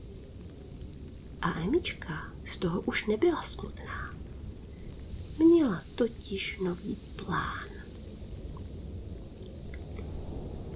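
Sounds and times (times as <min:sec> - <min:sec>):
low rumbling wind roaring: 0:00.0 - 0:10.7
steady rain pouring: 0:00.0 - 0:10.7
speech: 0:01.4 - 0:04.2, 0:05.4 - 0:07.7.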